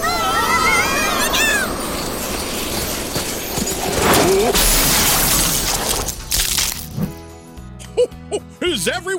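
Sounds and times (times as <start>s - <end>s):
tinkling debris: 0.0s - 7.0s
reindeer-drawn sleigh crashing and shattering in fog and snow: 0.0s - 7.2s
hoof-like clatter: 0.5s - 4.8s.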